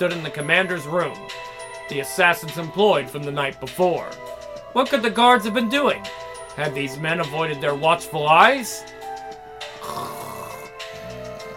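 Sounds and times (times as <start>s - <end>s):
speech: 0.0s - 9.0s
loud raspy rattling snore: 9.8s - 11.5s.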